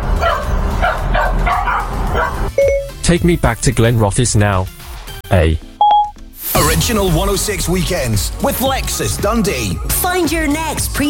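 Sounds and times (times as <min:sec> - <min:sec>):
puppy barking in short high yips: 0:00.1 - 0:02.5
speech: 0:03.1 - 0:05.7, 0:06.6 - 0:11.0.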